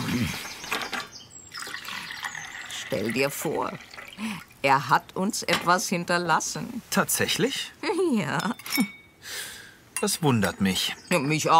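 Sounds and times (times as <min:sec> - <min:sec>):
speech: 0:00.2 - 0:00.5, 0:02.9 - 0:11.5
tea being poured: 0:01.5 - 0:04.7.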